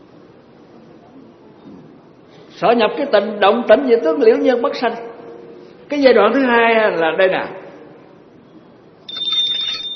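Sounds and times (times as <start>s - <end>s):
speech: 2.6s - 5.1s, 5.9s - 7.6s
small bell shaken during a Buddhist teaching: 9.1s - 9.9s.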